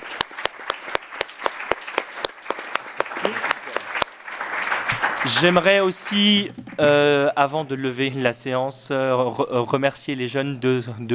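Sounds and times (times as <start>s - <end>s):
sharp prominent claps at a regular beat: 0.0s - 7.1s
room full of people applauding: 0.0s - 7.3s
speech: 5.2s - 11.1s.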